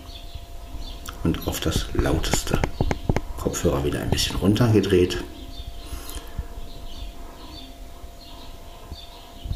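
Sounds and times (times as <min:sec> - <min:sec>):
birds chirping and trilling outside a window: 0:00.0 - 0:09.5
steady low hum: 0:00.0 - 0:09.5
speech: 0:01.2 - 0:05.4.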